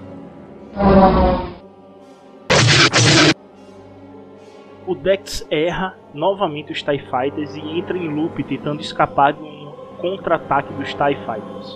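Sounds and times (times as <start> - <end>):
speech: 0.8 - 1.4, 4.9 - 11.7
starfighter cannon fire: 2.5 - 3.4.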